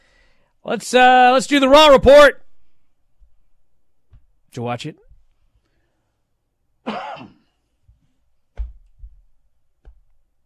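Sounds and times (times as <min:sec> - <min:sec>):
speech: 0:00.7 - 0:02.4, 0:04.5 - 0:05.0, 0:06.8 - 0:07.0
person coughing harshly: 0:06.8 - 0:07.6.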